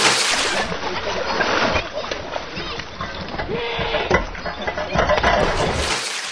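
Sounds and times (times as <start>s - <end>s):
continuous splashing and sloshing of children playing in water: 0.0s - 6.2s
children shouting and chattering while playing in water: 0.7s - 5.2s.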